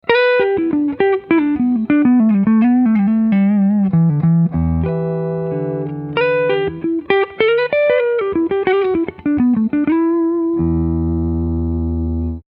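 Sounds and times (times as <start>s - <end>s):
Epiphone Sheraton II electric guitar on neck pickup, clean: 0.0s - 12.4s.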